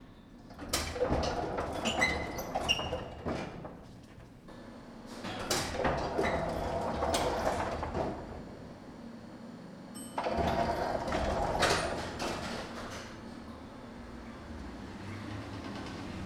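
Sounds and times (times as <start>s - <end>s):
elevator doors opening and closing: 0.0s - 9.2s, 9.9s - 16.2s.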